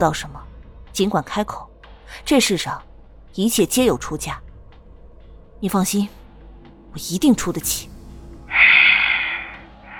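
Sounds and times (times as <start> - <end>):
speech: 0.0 - 0.4, 1.0 - 4.4, 5.6 - 6.2, 6.9 - 7.9
heavy panting breaths over a telephone line: 8.5 - 9.9.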